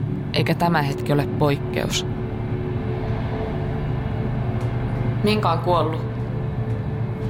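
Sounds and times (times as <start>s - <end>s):
moving train carriage interior rumble: 0.0s - 7.2s
speech: 0.4s - 2.2s, 5.2s - 6.1s.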